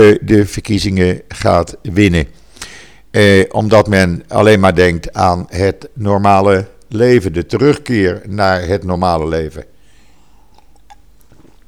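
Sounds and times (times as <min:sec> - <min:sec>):
speech: 0:00.0 - 0:02.4, 0:03.1 - 0:09.7
faint hum: 0:00.0 - 0:11.6
sip of water with wet mouth clicks and a gulp: 0:00.0 - 0:11.6.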